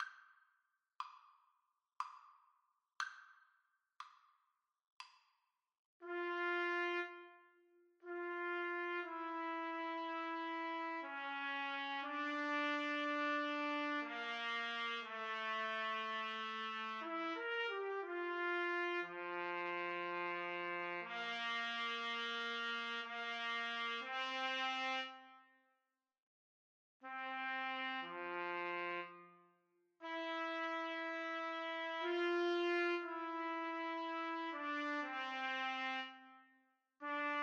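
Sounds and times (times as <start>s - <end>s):
trumpet duet playing an adagio: 6.0s - 25.4s, 27.0s - 29.4s, 30.0s - 37.4s.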